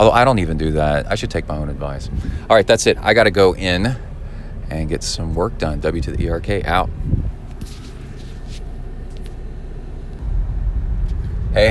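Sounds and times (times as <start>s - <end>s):
speech: 0.0s - 4.1s, 4.7s - 7.8s, 11.6s - 11.7s
road rumble inside a moving car in Texas: 0.0s - 11.7s.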